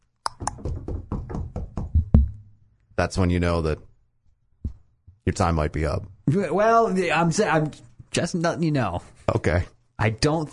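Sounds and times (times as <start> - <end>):
firm knocking on a front door: 0.6 - 2.4
speech: 3.0 - 3.9, 5.3 - 10.5.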